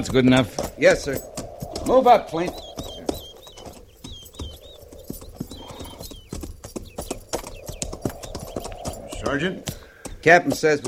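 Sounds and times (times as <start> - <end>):
speech: 0.0 - 2.6, 9.3 - 10.8
bright bird chirps: 0.0 - 10.8
several horses' hooves clip-clopping: 0.0 - 10.8.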